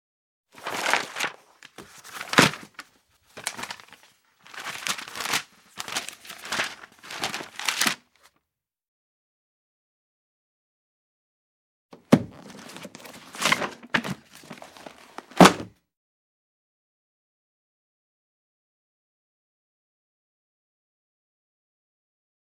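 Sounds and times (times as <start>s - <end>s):
pages of a thick book turning: 0.6s - 8.4s, 12.0s - 15.7s.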